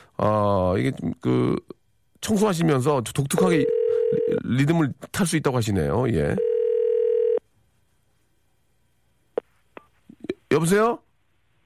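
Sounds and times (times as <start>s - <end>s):
speech: 0.2s - 6.5s, 10.5s - 11.0s
telephone dial tone: 3.6s - 4.4s, 6.4s - 7.4s.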